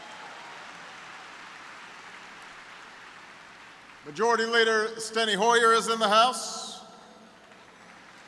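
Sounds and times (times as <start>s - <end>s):
crowd applauding: 0.0s - 4.8s, 7.1s - 8.2s
speech: 4.0s - 6.7s.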